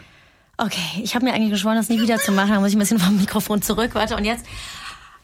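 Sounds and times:
speech: 0.6s - 4.8s
person imitating a baby monkey: 1.9s - 2.5s.

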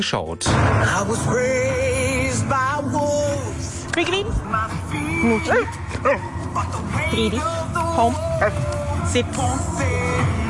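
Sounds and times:
speech: 0.0s - 10.4s
Border Collie barking and yipping excitedly: 5.4s - 6.4s.

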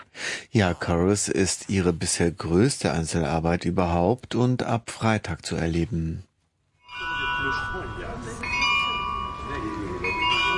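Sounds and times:
speech: 0.5s - 6.3s, 7.4s - 8.4s
carillon bells chiming a melody outdoors in front of a church: 6.8s - 10.5s
faint murmur: 7.0s - 10.5s.

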